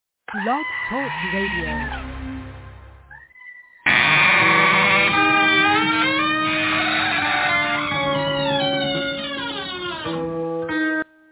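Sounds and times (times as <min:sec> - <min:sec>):
goat screaming: 0:00.3 - 0:02.1, 0:03.1 - 0:10.2
speech: 0:00.3 - 0:02.1.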